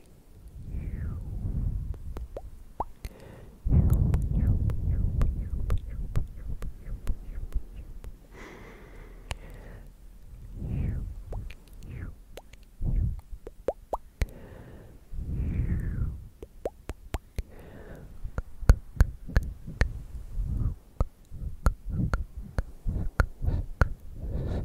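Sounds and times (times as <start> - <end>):
soft low thumps: 0.6 - 3.0, 3.6 - 8.3, 10.4 - 13.8, 18.2 - 24.6
sharp wet tongue clicks: 1.9 - 8.2, 9.2 - 9.6, 10.2 - 14.4, 16.4 - 17.6, 18.3 - 20.0, 21.0 - 24.2.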